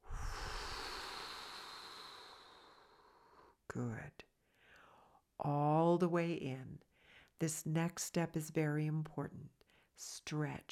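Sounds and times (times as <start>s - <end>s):
long exhale blown out after a big inhale during a breathing exercise: 0.0s - 3.6s
speech: 3.7s - 4.3s, 5.4s - 10.6s.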